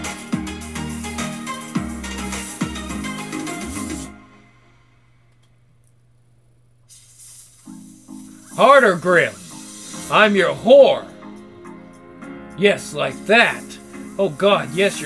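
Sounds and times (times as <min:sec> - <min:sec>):
snakes hissing: 0:00.0 - 0:04.1, 0:06.9 - 0:10.5, 0:13.2 - 0:15.0
speech: 0:08.6 - 0:09.4, 0:10.1 - 0:11.1, 0:12.6 - 0:15.0.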